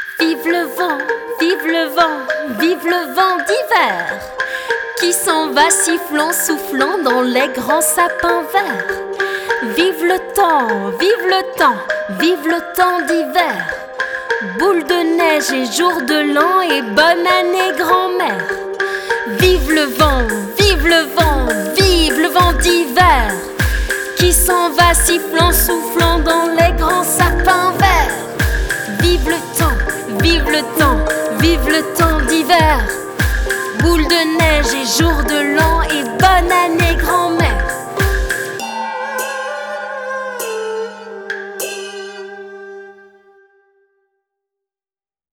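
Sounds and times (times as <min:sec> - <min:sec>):
person singing a song: 0:00.2 - 0:43.3.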